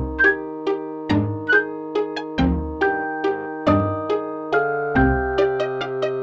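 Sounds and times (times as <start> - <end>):
polyphonic phone ringtone: 0.1 - 0.4, 1.5 - 6.1.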